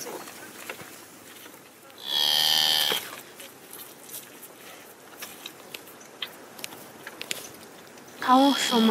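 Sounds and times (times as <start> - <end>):
faint outdoor noise: 0.0 - 8.9
cow mooing: 2.0 - 3.1.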